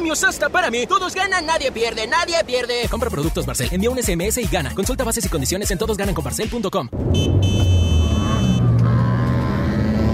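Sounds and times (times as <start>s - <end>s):
speech: 0.1s - 7.8s
car engine roaring while overtaking on the road: 6.9s - 10.1s
sharp high horn-like tone: 7.1s - 10.1s.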